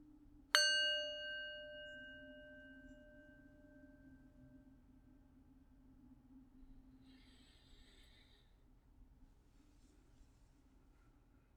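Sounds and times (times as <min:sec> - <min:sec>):
meditation bell ringing: 0:00.6 - 0:04.8.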